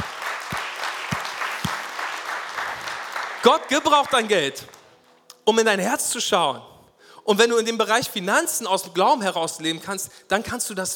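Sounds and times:
large audience applauding: 0.0 - 4.8
speech: 3.4 - 4.8, 5.5 - 10.9.

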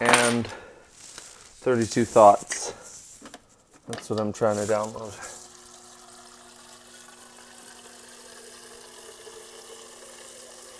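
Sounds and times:
speech: 0.0 - 0.6, 1.6 - 2.8, 3.9 - 5.3
faint steady hum: 0.4 - 10.7
water running from a tap: 5.3 - 10.7.

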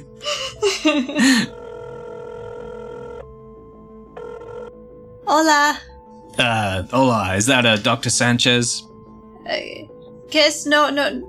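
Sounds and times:
steady electronic ringtone: 1.4 - 4.9
speech: 5.3 - 8.9, 9.5 - 11.2.

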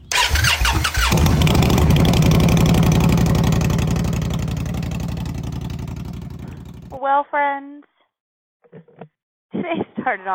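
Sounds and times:
motorcycle engine cranking, starting and idling: 0.0 - 7.0
speech: 7.1 - 7.8, 8.7 - 10.3.

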